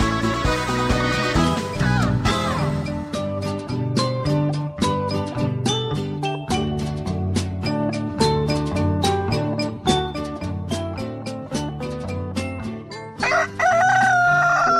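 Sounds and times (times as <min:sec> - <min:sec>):
upbeat music with steady percussion: 0:00.0 - 0:14.7
rooster crowing: 0:13.2 - 0:14.7.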